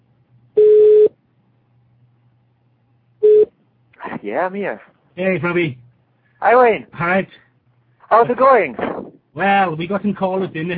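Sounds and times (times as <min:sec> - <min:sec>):
steady electronic ringback tone of an outgoing phone call: 0:00.6 - 0:01.1
speech: 0:04.2 - 0:05.8, 0:06.4 - 0:07.4, 0:08.1 - 0:08.8, 0:09.4 - 0:10.7.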